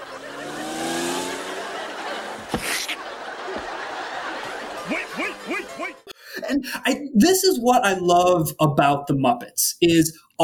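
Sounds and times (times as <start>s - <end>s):
sports car engine revving and driving off: 0.0s - 2.9s
laughter: 0.0s - 6.8s
speech: 6.5s - 10.4s.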